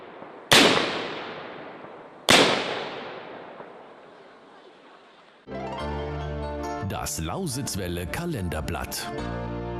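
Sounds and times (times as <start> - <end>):
ceremonial black-powder salute gun shots: 0.0 - 3.9
musical jingle: 5.5 - 9.1
speech: 6.9 - 9.6.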